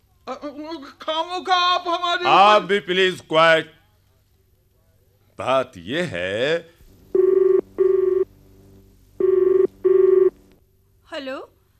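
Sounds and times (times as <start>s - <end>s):
speech: 0.3s - 3.8s, 5.4s - 6.8s, 11.1s - 11.5s
telephone ringing in a double-ring pattern with electronic buzzes: 7.1s - 8.3s, 9.2s - 10.4s.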